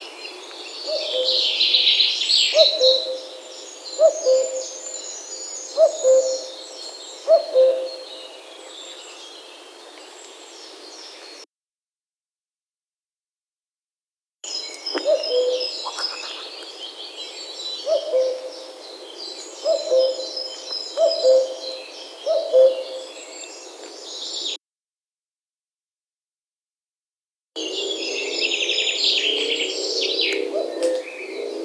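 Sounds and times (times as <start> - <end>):
cuckoo calling: 0.8 - 8.3, 14.7 - 16.8, 17.8 - 23.2, 27.6 - 31.5.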